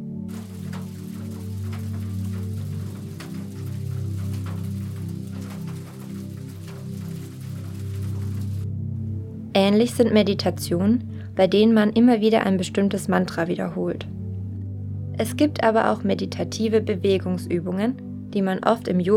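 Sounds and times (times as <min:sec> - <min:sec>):
low humming drone: 0:00.0 - 0:09.5
steady rain: 0:00.3 - 0:08.8
speech: 0:09.6 - 0:14.2, 0:15.2 - 0:19.1.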